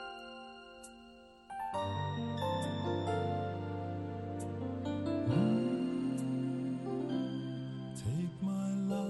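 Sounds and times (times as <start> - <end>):
band music: 1.7 - 8.9.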